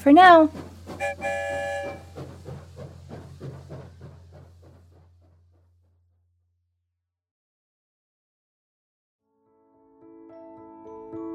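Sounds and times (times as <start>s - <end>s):
speech: 0.0s - 2.0s
train chugging along the tracks toward the Pflugerville station: 0.0s - 5.8s
train whistle blast: 1.0s - 2.2s.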